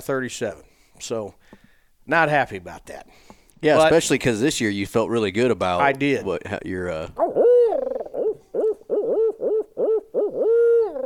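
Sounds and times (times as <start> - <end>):
speech: 0.0 - 7.4
person imitating owl hoots at a turkey calling competition: 7.2 - 11.0.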